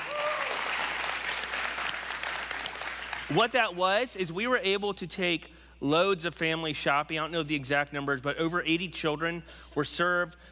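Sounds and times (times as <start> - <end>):
person cheering: 0.0 - 0.7
audience applauding a Christmas charity outreach: 0.0 - 3.5
speech: 3.3 - 10.4.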